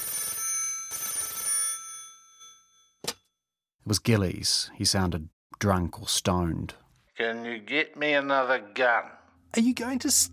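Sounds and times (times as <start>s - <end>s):
telephone ringing: 0.0s - 3.0s
speech: 3.8s - 10.3s.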